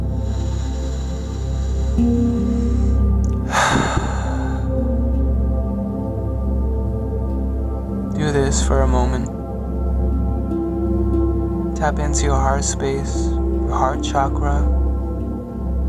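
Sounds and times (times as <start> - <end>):
deep inhale through the nose during a guided meditation: 0.0 - 5.0
steady sustained tonal music bed: 0.0 - 15.8
speech: 8.5 - 9.4, 11.8 - 14.8.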